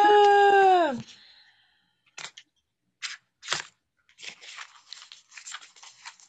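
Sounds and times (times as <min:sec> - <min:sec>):
shuffling a deck of oracle cards: 0:03.0 - 0:06.2.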